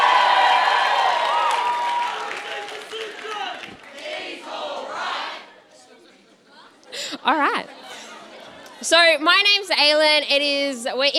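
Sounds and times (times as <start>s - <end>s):
youth crowd at an evening church youth gathering shouting and cheering: 0.0s - 5.6s
speech: 7.2s - 7.7s, 8.9s - 11.1s.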